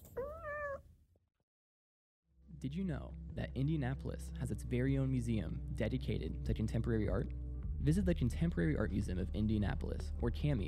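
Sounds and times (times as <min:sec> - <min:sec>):
pet cat meowing: 0:00.0 - 0:00.8
soft small sounds: 0:00.0 - 0:00.9
speech: 0:02.6 - 0:10.6.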